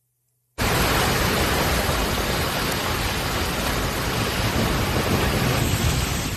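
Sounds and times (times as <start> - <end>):
heavy rain in a storm: 0.6 - 6.3
strong storm wind: 0.6 - 6.3.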